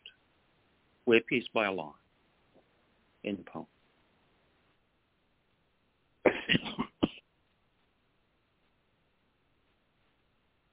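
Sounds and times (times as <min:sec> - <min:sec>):
speech: 0:01.1 - 0:02.0, 0:03.2 - 0:03.8
person clearing throat: 0:06.3 - 0:07.2
person coughing: 0:06.3 - 0:07.2.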